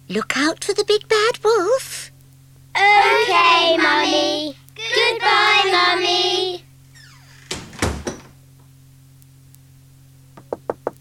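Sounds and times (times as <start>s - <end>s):
low steady hum: 0.0s - 10.9s
speech: 0.1s - 2.1s, 2.8s - 6.6s
knocking on a wooden door: 10.4s - 10.9s.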